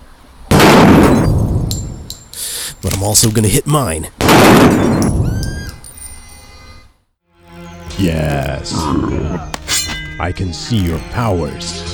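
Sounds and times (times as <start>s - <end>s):
gunshot at a target: 0.5s - 1.7s, 4.2s - 5.3s
high glassy clinks: 1.2s - 2.6s, 5.0s - 6.7s
speech: 2.8s - 5.1s, 8.0s - 9.6s, 10.2s - 11.9s.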